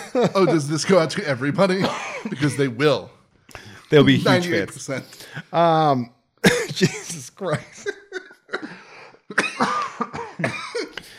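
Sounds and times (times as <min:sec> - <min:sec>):
speech: 0:00.1 - 0:08.0
harsh coughing fit: 0:01.7 - 0:02.8, 0:06.4 - 0:11.1.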